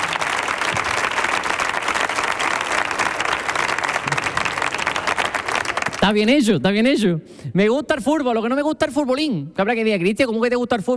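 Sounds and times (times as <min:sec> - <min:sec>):
audience applause: 0:00.0 - 0:06.2
speech: 0:06.1 - 0:10.9.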